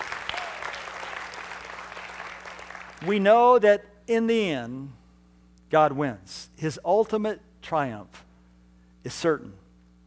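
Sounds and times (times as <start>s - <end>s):
audience applause: 0.0s - 3.1s
speech: 3.0s - 5.0s, 5.7s - 8.2s, 9.0s - 9.6s.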